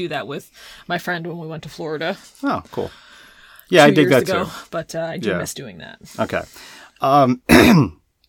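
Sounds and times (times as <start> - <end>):
speech: 0.0 - 3.1, 3.7 - 8.0
person coughing from dust in the throat: 7.5 - 8.0.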